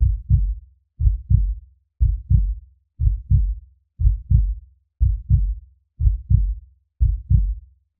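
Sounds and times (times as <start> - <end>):
heartbeat: 0.0 - 7.6.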